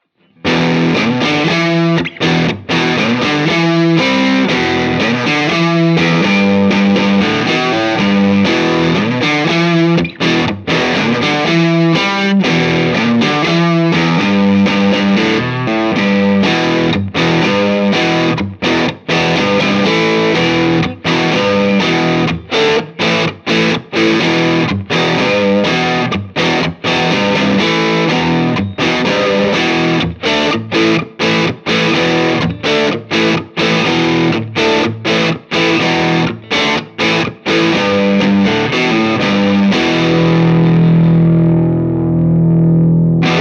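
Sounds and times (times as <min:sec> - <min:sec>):
Firebird electric guitar neck pickup with OCD crunch through Fender Deluxe amp: 0:00.0 - 0:43.3.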